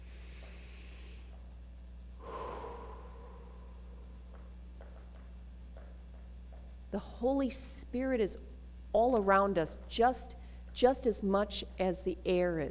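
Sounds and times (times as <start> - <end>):
low steady hum: 0.0 - 12.6
deep breath in: 2.2 - 4.2
speech: 6.9 - 12.6.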